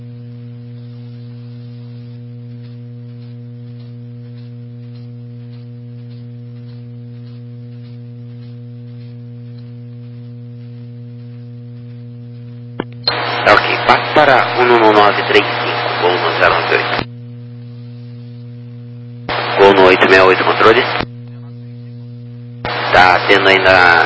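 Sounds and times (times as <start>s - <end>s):
keyed radio transmitter carrier hum on an airline's aviation radio channel: 4.6s - 17.1s, 17.7s - 24.0s
speech: 13.9s - 17.0s, 20.1s - 21.1s, 23.0s - 24.0s.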